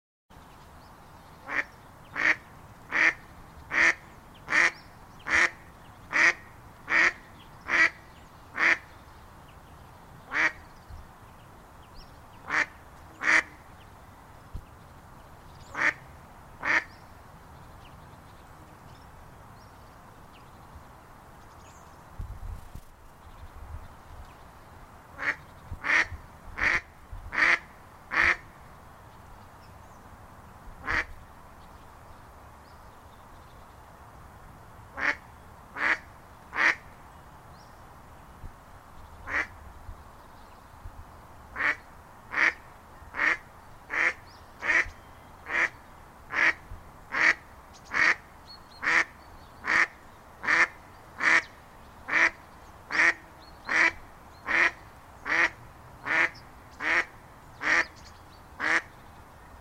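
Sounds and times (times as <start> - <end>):
mallard duck calling: 1.4 - 8.0, 8.6 - 8.9, 10.3 - 10.6, 12.4 - 13.6, 15.7 - 16.0, 16.6 - 16.9, 25.2 - 28.4, 30.8 - 31.1, 35.0 - 35.2, 39.3 - 39.5, 41.6 - 48.2, 48.8 - 51.5, 52.1 - 58.0, 58.6 - 58.9.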